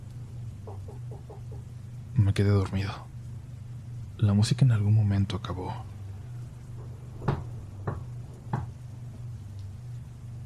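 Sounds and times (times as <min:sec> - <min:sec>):
steady low hum: 0:00.0 - 0:10.4
dull knocks on a bedroom door: 0:00.6 - 0:01.7, 0:06.8 - 0:08.8
speech: 0:00.7 - 0:03.1, 0:04.2 - 0:05.9.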